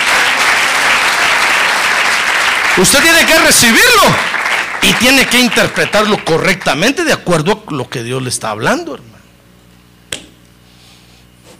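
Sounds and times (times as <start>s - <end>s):
congregation applauding during an evangelical church service: 0.0s - 7.4s
speech: 2.8s - 9.2s.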